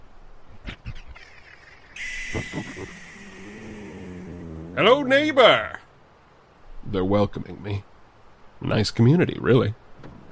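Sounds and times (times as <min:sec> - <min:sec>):
bird harsh raspy calls at night: 0:02.0 - 0:04.8
steady high hiss or buzz: 0:02.0 - 0:09.0
speech: 0:04.8 - 0:05.7, 0:06.9 - 0:07.9, 0:08.6 - 0:09.8.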